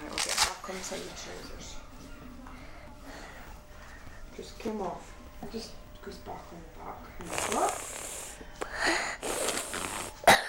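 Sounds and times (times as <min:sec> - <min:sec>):
speech: 0:00.7 - 0:01.8, 0:04.4 - 0:08.1
raspy breathing: 0:02.5 - 0:04.3, 0:07.3 - 0:10.2
harsh wheezy cough: 0:10.2 - 0:10.4.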